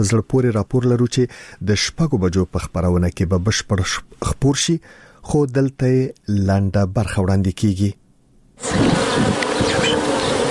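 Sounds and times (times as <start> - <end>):
speech: 0.0 - 8.0
honey bees buzzing at a beekeeping farm in hive boxes: 8.6 - 10.5.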